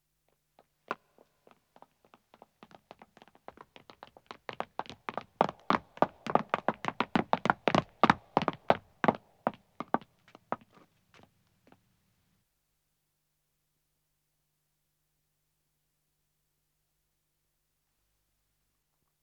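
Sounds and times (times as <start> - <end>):
two men running on stone footsteps: 1.5 - 11.8.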